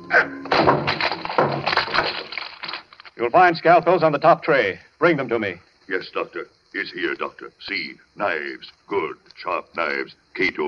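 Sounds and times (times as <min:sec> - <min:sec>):
speech: 0:00.1 - 0:00.4, 0:03.2 - 0:10.6
locked tall white cabinet being smashed open: 0:00.4 - 0:03.1.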